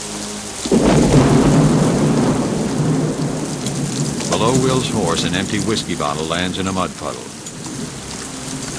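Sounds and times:
heavy rain on a muddy town street at night: 0.0s - 8.7s
loud crack of thunder over a muddy town street at night: 0.7s - 7.4s
speech: 4.4s - 7.4s.

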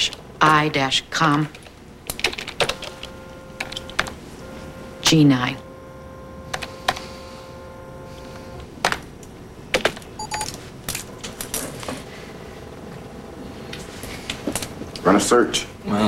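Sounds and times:
low hiss: 0.0s - 16.0s
speech: 0.4s - 1.6s, 5.1s - 5.6s, 15.1s - 16.0s
typing on a computer keyboard: 1.3s - 4.1s.

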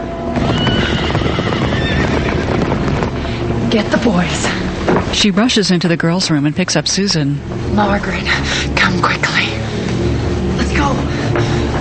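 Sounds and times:
dense continuous rumble of movement: 0.0s - 11.7s
horses of approaching mounted dragoons neighing and whinnying: 0.3s - 3.5s
speech: 3.7s - 9.5s.

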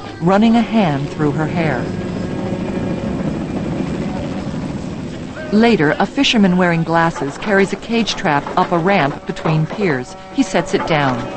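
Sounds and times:
helicopter rotor and engine roaring: 0.0s - 11.3s
speech: 0.2s - 2.0s, 5.5s - 11.3s.

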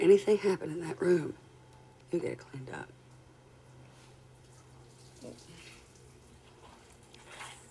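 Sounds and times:
speech: 0.0s - 1.4s, 2.1s - 3.0s, 5.2s - 5.6s
faint low hum: 0.0s - 7.6s
water running steadily from a tap: 4.4s - 6.3s.

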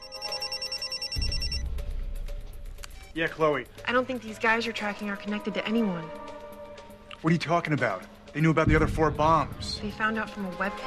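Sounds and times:
telephone ringback tone: 0.0s - 1.6s
speech: 3.2s - 6.3s, 7.2s - 10.8s
low rumbling thump: 8.6s - 10.0s.

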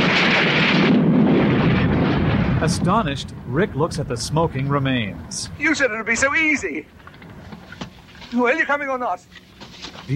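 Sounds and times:
helicopter exploding in a ball of fire: 0.0s - 6.7s
speech: 2.6s - 7.0s, 8.3s - 9.5s.

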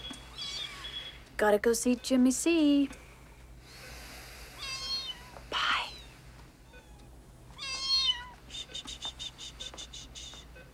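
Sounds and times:
kitten meowing: 0.3s - 1.0s, 4.6s - 6.1s, 6.7s - 8.4s
speech: 1.4s - 3.0s.

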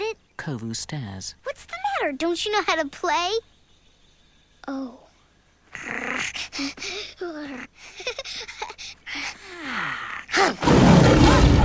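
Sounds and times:
speech: 0.4s - 3.5s, 4.7s - 5.0s, 5.7s - 8.7s
snarling growly vocal sounds: 9.7s - 11.6s
angry lion roaring: 10.4s - 11.6s.

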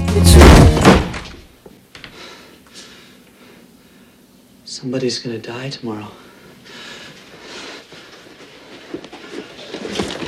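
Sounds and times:
door kicked open with a heavy thump: 0.1s - 1.5s
speech: 4.8s - 6.2s.

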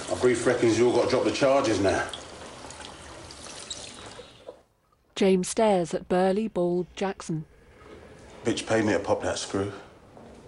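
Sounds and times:
water running at a washroom sink as hands are rinsed: 0.0s - 4.6s
speech: 0.2s - 2.2s, 5.2s - 7.5s, 8.4s - 9.9s.

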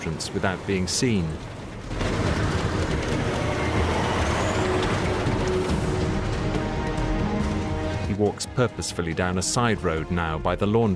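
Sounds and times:
speech: 0.0s - 2.2s, 8.2s - 10.9s
broadband road noise: 0.0s - 8.1s
heavy truck engine roar: 1.7s - 7.9s.

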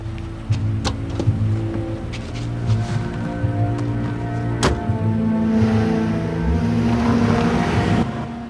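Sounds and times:
4x4 vehicle engine rumble driving away down a road: 0.0s - 8.4s
4x4 vehicle tyre and road noise: 0.0s - 8.4s.

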